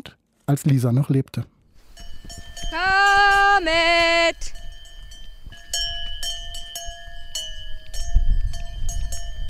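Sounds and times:
speech: 0.5s - 1.6s, 3.6s - 4.6s
cowbells on cows clanking at a farm: 1.9s - 9.4s.

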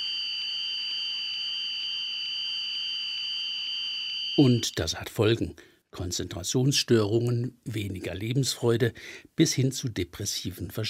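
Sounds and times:
continuous high-pitched whistle tone simulating tinnitus: 0.0s - 4.6s
faint shrill overtone: 0.0s - 4.6s
speech: 4.4s - 10.8s.

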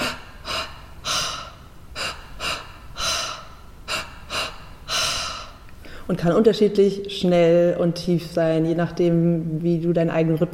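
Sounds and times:
mouth breathwork with two inhalations and one exhalation: 0.0s - 6.1s
speech: 6.1s - 10.5s.

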